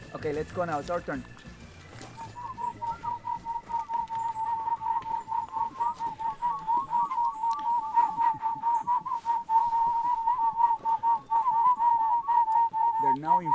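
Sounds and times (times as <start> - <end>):
speech: 0.1 - 1.5
people on a guided tour whistling to call barbet birds: 0.1 - 13.5.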